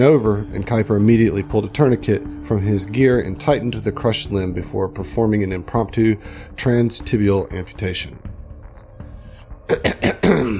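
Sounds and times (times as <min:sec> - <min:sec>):
speech: 0:00.0 - 0:08.3, 0:09.7 - 0:10.5
man clearing his throat: 0:09.7 - 0:10.5.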